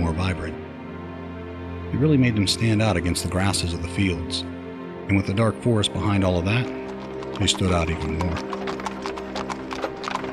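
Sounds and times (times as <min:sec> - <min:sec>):
speech: 0:01.9 - 0:04.5, 0:05.1 - 0:06.8, 0:07.4 - 0:08.8
horse hooves trotting on a hard road: 0:06.0 - 0:10.3.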